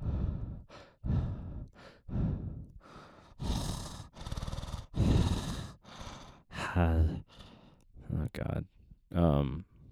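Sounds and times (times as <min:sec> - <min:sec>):
heavy breathing close on a microphone: 0:00.0 - 0:07.8
speech: 0:06.8 - 0:07.3, 0:08.4 - 0:09.7.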